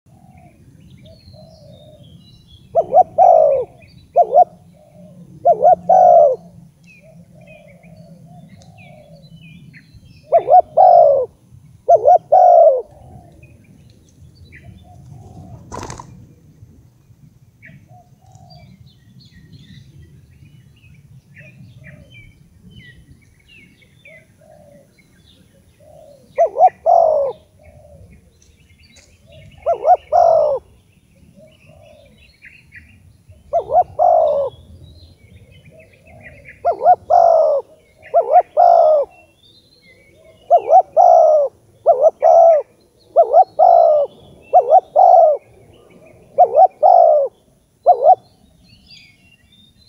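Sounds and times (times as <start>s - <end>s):
spotted dove and zebra dove calls: 2.7s - 9.2s, 10.2s - 13.5s, 14.5s - 16.3s, 24.0s - 32.2s, 32.9s - 34.8s, 35.6s - 39.4s, 40.0s - 48.5s.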